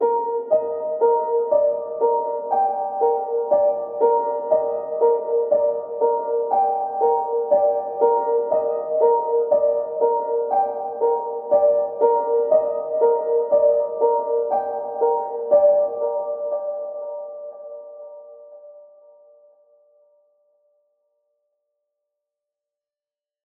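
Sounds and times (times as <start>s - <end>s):
soft ambient high piano with reverb in C minor: 0.0s - 20.2s.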